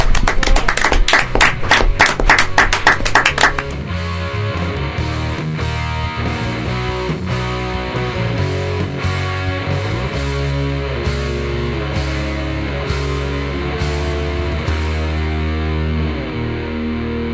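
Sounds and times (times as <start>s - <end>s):
audience applause for performers: 0.0s - 3.8s
music with sustained tones: 1.4s - 17.3s.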